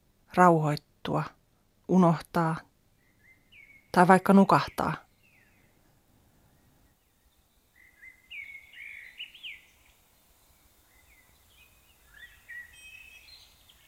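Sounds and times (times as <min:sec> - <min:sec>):
speech: 0:00.4 - 0:02.7, 0:03.9 - 0:05.0
birds chirping and singing outdoors: 0:03.0 - 0:05.8, 0:06.5 - 0:13.8.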